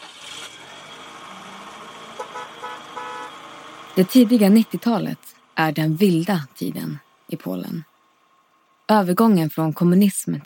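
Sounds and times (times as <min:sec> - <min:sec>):
busy street traffic with Polonez and Fiat 125p cars in Poland: 0:00.0 - 0:10.4
car horn toots: 0:02.1 - 0:03.5
speech: 0:04.0 - 0:07.9, 0:08.9 - 0:10.4.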